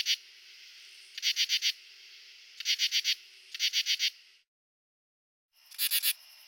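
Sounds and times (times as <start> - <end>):
male common true katydid (Pteryphylla camellifolia) calling with harsh buzzy pulses: 0.0 - 0.2, 1.0 - 1.8, 2.6 - 4.2, 5.6 - 6.4
steady high insect hiss: 0.0 - 4.5, 5.6 - 6.4.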